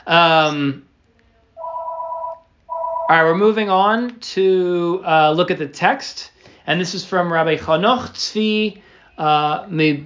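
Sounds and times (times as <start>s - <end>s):
speech: 0.0s - 0.9s, 3.1s - 10.0s
telephone ringing with electronic two-tone warble: 1.6s - 3.4s.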